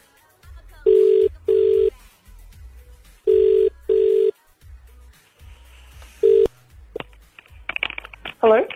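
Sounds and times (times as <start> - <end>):
ringback tone of an outgoing telephone call: 0.9 - 1.9, 3.3 - 4.3, 6.2 - 6.5.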